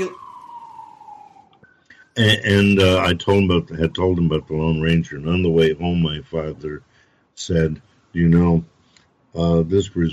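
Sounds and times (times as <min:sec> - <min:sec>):
speech: 0:00.0 - 0:00.2, 0:02.2 - 0:08.7, 0:09.3 - 0:10.1
emergency vehicle siren wailing outside as the vehicle passes: 0:00.0 - 0:06.2.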